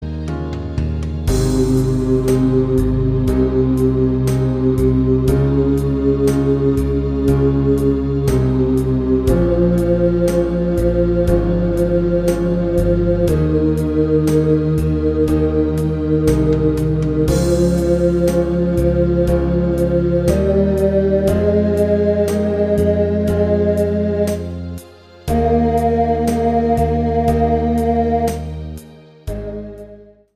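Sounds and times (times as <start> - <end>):
bass sample backing track: 0.8 - 30.3.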